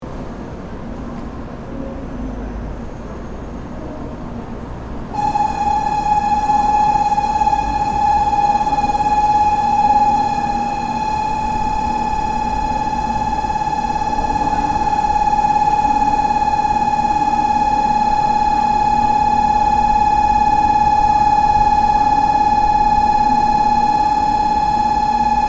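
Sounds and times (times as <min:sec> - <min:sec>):
Shinkansen siren: 0:05.1 - 0:25.4.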